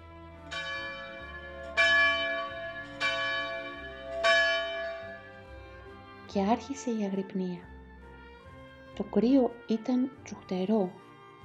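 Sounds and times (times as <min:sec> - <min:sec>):
low sustained drone: 0:00.0 - 0:07.2
small bell ringing: 0:00.5 - 0:05.4
speech: 0:06.3 - 0:07.7, 0:09.0 - 0:11.0.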